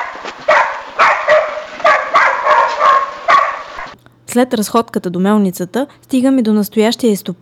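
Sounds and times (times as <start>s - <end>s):
dogs barking at an abandoned mill: 0.0s - 4.0s
speech: 4.4s - 7.4s.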